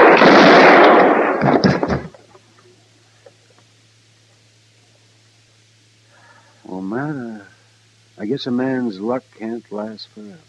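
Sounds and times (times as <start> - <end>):
loud gunshot during an attempted arrest: 0.0 - 2.2
speech: 8.2 - 10.4.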